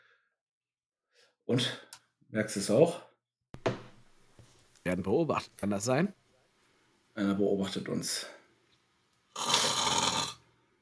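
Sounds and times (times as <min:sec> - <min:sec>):
speech: 0:01.5 - 0:03.1, 0:04.9 - 0:06.2, 0:07.2 - 0:08.4
person imitating the snoring of a sleeping dwarf: 0:09.3 - 0:10.4.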